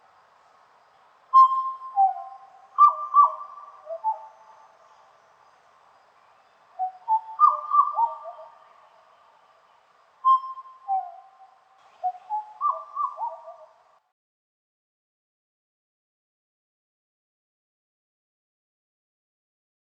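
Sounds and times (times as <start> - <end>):
black butcherbird song: 0.0 - 14.0.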